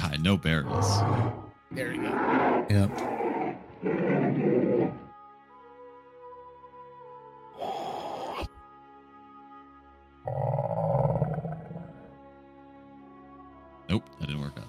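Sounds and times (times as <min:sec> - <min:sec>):
speech: 0:00.1 - 0:05.0, 0:13.9 - 0:14.6
lion roaring: 0:00.6 - 0:05.2, 0:10.3 - 0:12.1.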